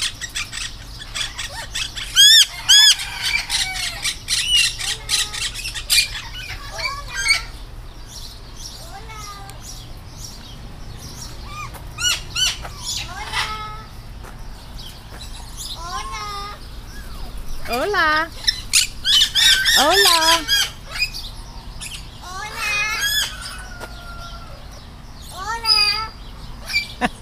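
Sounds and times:
parrots squawking and calling in the morning: 0.0 - 7.6, 11.2 - 14.0, 15.2 - 24.7, 25.3 - 27.0
steady low hum: 0.0 - 27.2.

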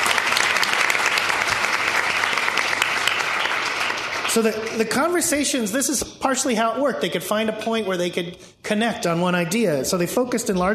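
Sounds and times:
full applause from a sizable audience: 0.0 - 4.9
speech: 4.4 - 10.7.

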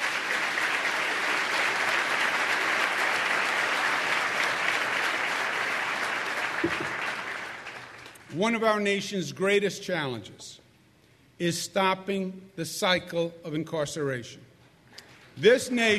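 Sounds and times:
large crowd audience applause: 0.0 - 8.2
speech: 6.6 - 7.0, 8.3 - 10.6, 11.4 - 14.4, 15.4 - 15.9.

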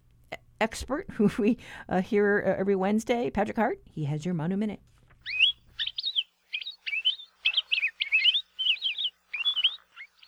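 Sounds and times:
speech: 0.6 - 5.4
palila, native Hawaiian honeycreeper, singing slurred warbling and trilled notes: 5.2 - 10.2.

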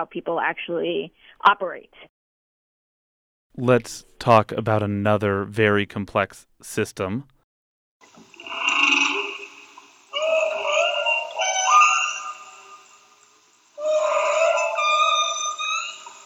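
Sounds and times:
speech: 0.0 - 2.2, 3.5 - 7.3
whale song with long tonal moaning calls: 8.1 - 16.2.

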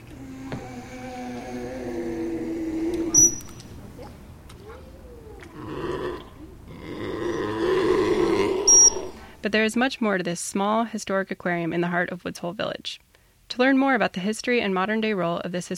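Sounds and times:
harbor seal grunting and growling at an aquarium: 0.0 - 9.4
faint noise: 0.0 - 15.7
speech: 9.5 - 15.7.

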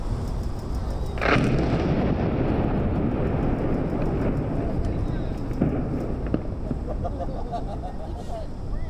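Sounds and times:
steady low rumble: 1.0 - 8.8
second fainter explosive report: 1.1 - 8.7
demolition explosives blast bringing down steel arch of the Broadway Bridge: 1.2 - 7.2
laughter: 6.7 - 8.7.

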